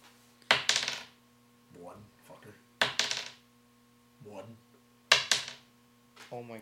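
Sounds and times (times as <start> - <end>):
dice dropped onto a hard tabletop during a tabletop game: 0.5 - 1.2, 2.8 - 3.4, 5.1 - 5.7.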